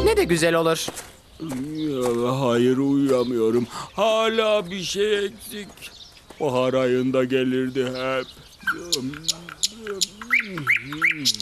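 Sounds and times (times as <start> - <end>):
nightingale singing: 0.0 - 11.4
speech: 0.1 - 11.4.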